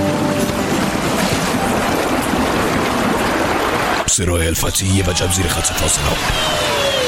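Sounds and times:
dirty wash water pouring and splashing down: 0.0s - 4.1s
speech: 4.2s - 6.8s.

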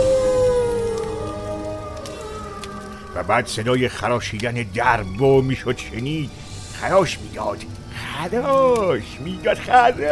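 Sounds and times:
wolf howling at night in a winter desert: 0.0s - 4.2s
speech: 3.2s - 10.0s.

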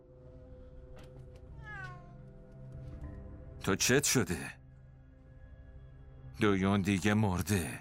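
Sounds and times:
cat meowing: 1.6s - 2.3s
speech: 3.6s - 4.6s, 6.4s - 7.7s.

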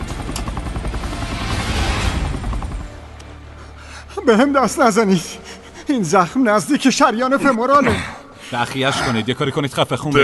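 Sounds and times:
helicopter rotor and engine roar while landing: 0.0s - 7.4s
speech: 4.3s - 10.2s.

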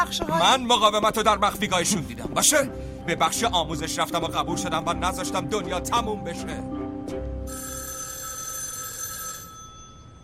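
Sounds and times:
speech: 0.0s - 7.6s
telephone ringing with a bright sustained electronic tone: 7.4s - 10.2s.

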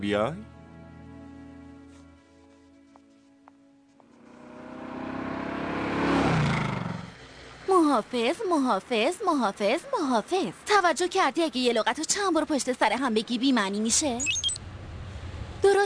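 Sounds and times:
speech: 0.0s - 0.5s, 7.9s - 14.5s, 15.6s - 15.8s
car engine idling and revving as vehicle pulls away: 4.0s - 7.2s
high wavering voice-like sounds: 14.0s - 14.6s.

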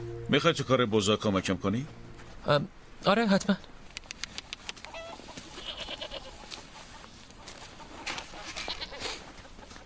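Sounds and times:
speech: 0.3s - 3.7s
chickens clucking in a farmyard: 4.5s - 9.8s
goats bleating in a farmyard: 5.0s - 6.5s, 8.5s - 9.2s.

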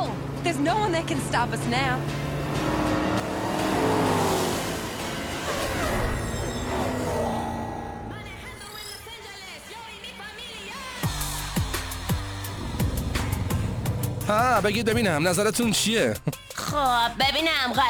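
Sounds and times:
street racing car engine revving on a road: 0.0s - 8.4s, 11.1s - 15.8s
speech: 0.4s - 3.0s, 14.3s - 17.8s.

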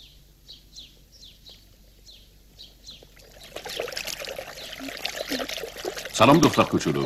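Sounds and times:
birds chirping: 0.0s - 7.0s
icy water trickling and splashing from a spring: 2.9s - 7.0s
speech: 6.2s - 7.0s.

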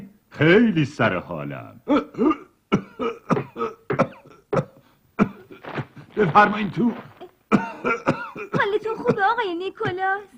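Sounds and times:
speech: 0.4s - 2.4s, 6.2s - 7.1s, 9.1s - 10.3s
person coughing harshly and hoarsely: 1.9s - 9.4s.

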